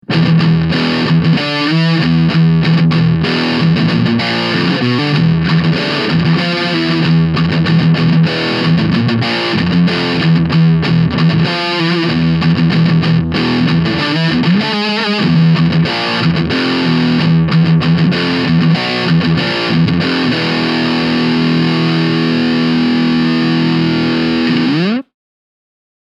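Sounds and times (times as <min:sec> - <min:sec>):
electric guitar through a Mooer Hornet 30 amplifier preset: 0:00.0 - 0:25.1.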